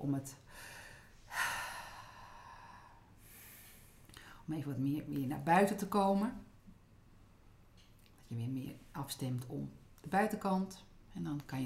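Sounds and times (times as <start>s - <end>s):
speech: 0.0s - 1.5s, 4.5s - 6.5s, 8.3s - 11.6s
deep breath during a guided relaxation exercise: 0.5s - 4.4s.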